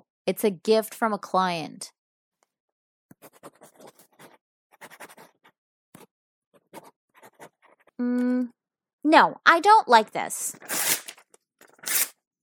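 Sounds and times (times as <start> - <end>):
speech: 0.3 - 2.0, 3.2 - 3.8, 8.0 - 10.9
pencil scratching across paper while drawing: 3.1 - 8.0.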